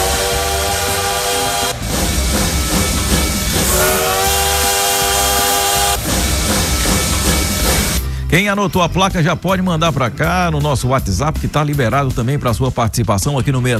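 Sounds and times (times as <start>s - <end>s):
heavy train engine roaring and revving: 0.0s - 8.1s
speech: 8.3s - 13.7s.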